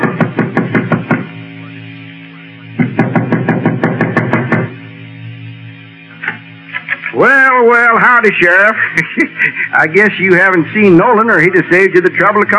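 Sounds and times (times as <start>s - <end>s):
firm rapid knocking on a front door: 0.0s - 1.3s, 2.8s - 4.7s
laughter: 6.7s - 7.4s, 8.4s - 10.3s
speech: 8.2s - 12.5s.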